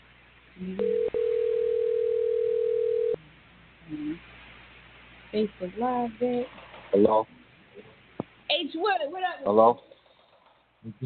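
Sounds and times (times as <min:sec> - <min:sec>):
speech: 0:00.6 - 0:00.9, 0:05.4 - 0:07.4, 0:08.6 - 0:09.9, 0:10.8 - 0:11.0
telephone dial tone as the line dials out: 0:00.8 - 0:03.2.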